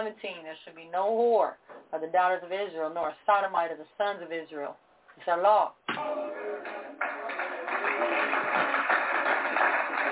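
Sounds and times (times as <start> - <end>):
speech: 0.0 - 6.8
audience clapping: 6.0 - 10.0.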